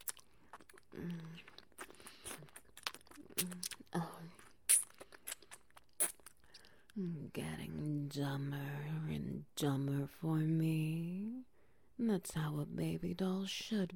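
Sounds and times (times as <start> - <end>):
wet sucking mouth sounds: 0.0 - 7.0
speech: 8.1 - 11.4, 12.0 - 13.9.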